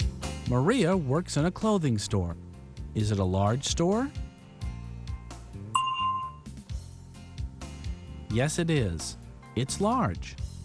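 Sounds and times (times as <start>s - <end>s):
speech: 0.5s - 4.2s, 8.4s - 10.5s
bell chime in a language-learning drill: 5.8s - 6.5s.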